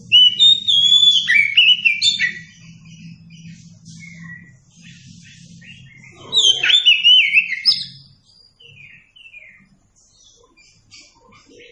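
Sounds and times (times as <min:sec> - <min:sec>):
oriental magpie-robin singing warbled sliding whistles: 0:00.0 - 0:11.6
low hum: 0:02.2 - 0:06.4.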